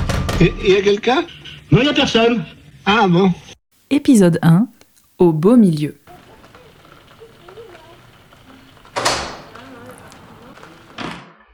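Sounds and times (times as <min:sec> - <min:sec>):
speech: 0:00.4 - 0:06.0
faint voices murmuring: 0:06.0 - 0:11.0
door pushed open with a scraping rush: 0:07.9 - 0:11.3.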